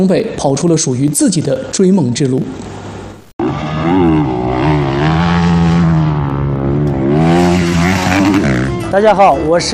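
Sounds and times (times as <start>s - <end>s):
speech: 0.0s - 2.8s, 8.9s - 9.7s
motorcycle engine revving in a rally race in Xinjiang China: 3.4s - 8.9s.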